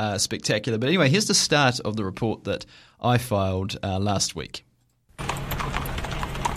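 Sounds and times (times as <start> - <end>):
speech: 0.0 - 4.7
horses' hooves clip-clopping on a hard surface as riders ride through Feilding, New Zealand: 5.2 - 6.5.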